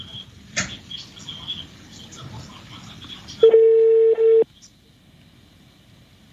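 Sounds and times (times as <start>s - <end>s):
low murmur: 0.0s - 5.1s
telephone line ringback tone: 3.4s - 4.4s.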